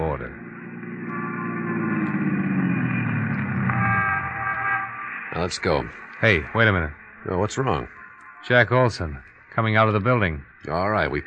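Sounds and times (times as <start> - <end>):
squad car engine rumbling: 0.0 - 11.2
squad car horn honking in long blasts: 0.9 - 5.8
speech: 5.4 - 11.2.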